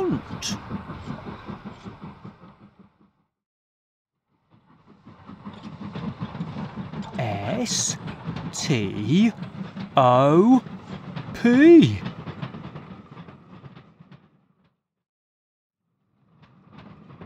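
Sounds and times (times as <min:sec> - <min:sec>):
train rumbling: 0:00.0 - 0:03.0, 0:04.6 - 0:14.2
speech: 0:00.1 - 0:00.7, 0:07.6 - 0:10.7, 0:11.4 - 0:12.1.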